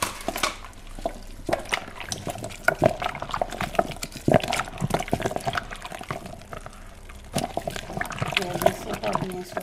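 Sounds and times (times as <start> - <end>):
thick creamy white baobab juice sloshing and splashing through a sieve: 0.0 - 9.6.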